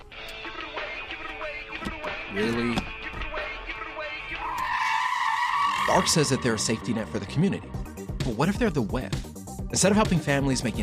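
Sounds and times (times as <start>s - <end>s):
speech: 2.3s - 3.0s, 5.9s - 10.8s
car tires skidding from reckless driving: 2.8s - 7.4s.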